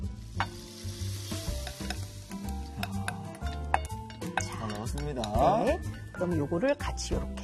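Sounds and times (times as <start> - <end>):
mackerel fillet sizzling in butter: 0.0 - 5.7
speech: 4.9 - 7.4.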